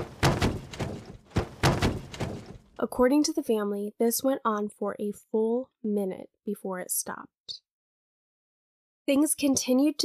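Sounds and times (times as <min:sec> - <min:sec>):
dresser drawers slamming shut: 0:00.0 - 0:02.7
speech: 0:02.8 - 0:07.6, 0:09.1 - 0:10.0.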